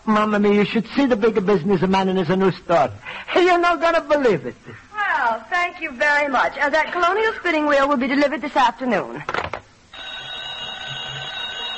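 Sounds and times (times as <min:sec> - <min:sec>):
speech: 0:00.1 - 0:09.4
telephone bell ringing in an antique shop: 0:09.9 - 0:11.7.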